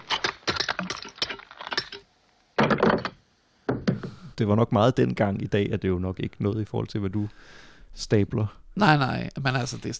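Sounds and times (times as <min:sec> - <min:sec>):
small statue crushed in a gloved hand: 0:00.0 - 0:03.2
speech: 0:04.4 - 0:09.9.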